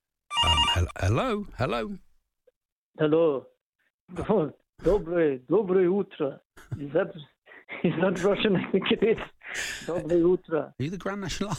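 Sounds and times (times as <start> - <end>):
voice imitating the ringing of a red telephone: 0.3 - 1.1
speech: 0.7 - 2.0, 3.0 - 3.5, 4.1 - 11.5.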